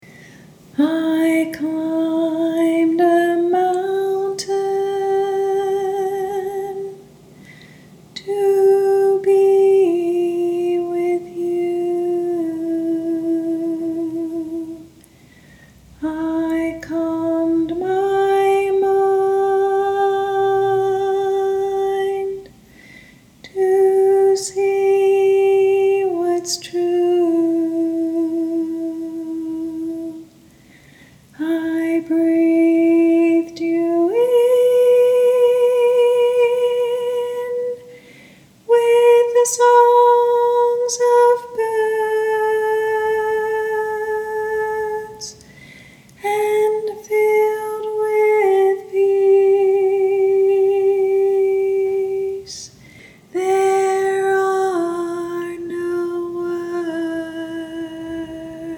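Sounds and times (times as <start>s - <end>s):
high harmony vocal part: 0.0s - 58.7s.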